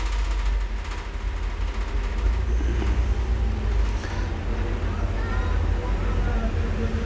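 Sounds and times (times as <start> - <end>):
street traffic of cars, vans and motorbikes on Boulevard Saint-Germain: 0.0 - 7.0
vehicle engine rising on Boulevard Saint-Germain: 2.2 - 7.0
faint murmur of voices: 4.1 - 7.0.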